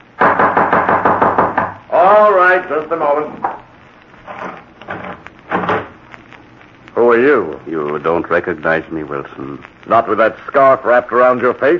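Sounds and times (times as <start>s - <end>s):
loud knocking on a door: 0.2s - 1.8s
speech: 2.5s - 3.5s, 7.2s - 11.7s.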